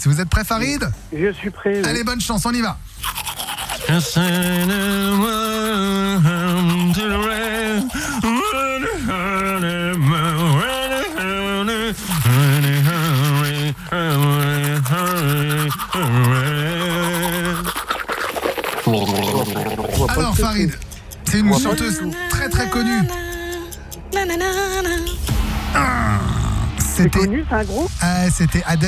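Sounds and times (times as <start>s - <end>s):
speech: 0.0s - 3.2s, 3.9s - 8.3s, 20.0s - 23.3s, 27.0s - 28.8s
toothbrush scrubbing teeth: 2.9s - 24.9s
person humming a muffled melody while brushing teeth: 3.8s - 18.2s, 21.1s - 26.4s.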